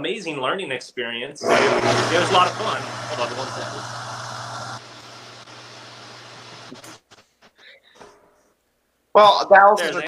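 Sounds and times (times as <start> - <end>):
speech: 0.0 - 4.0, 9.2 - 10.0
air compressor running: 1.4 - 7.0.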